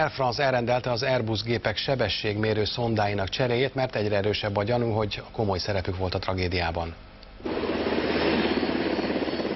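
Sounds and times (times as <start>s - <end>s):
speech: 0.0s - 7.7s
Brazilian military Black Hawk and Super Puma helicopters flying over the Atlantic: 7.4s - 9.5s.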